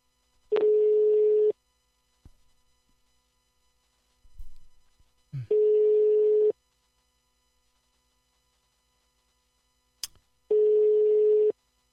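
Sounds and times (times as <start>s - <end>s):
telephone ringback tone while calling a guest: 0.6s - 1.5s, 5.5s - 6.5s, 10.5s - 11.5s.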